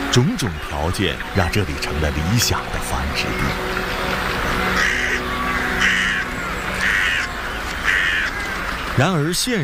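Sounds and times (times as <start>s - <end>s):
speech: 0.1s - 4.1s, 9.0s - 9.6s
ravens and crows cawing: 4.6s - 9.3s.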